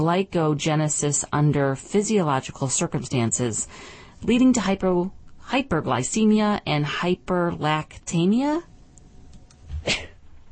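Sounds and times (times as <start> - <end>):
speech: 0.0 - 8.7, 9.8 - 10.1
person sneezing in a lecture: 9.7 - 10.2.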